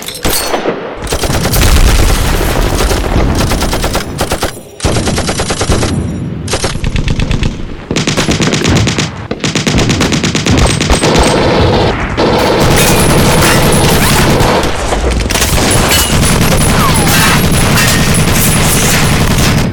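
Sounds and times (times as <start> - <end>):
rapid gunfire in a short battle: 1.0 - 19.7.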